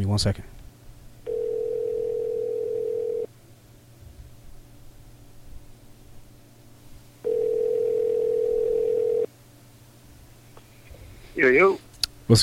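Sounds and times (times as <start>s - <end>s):
speech: 0.0s - 0.6s, 12.3s - 12.4s
telephone dial tone while placing a call: 1.3s - 3.3s, 7.2s - 9.3s.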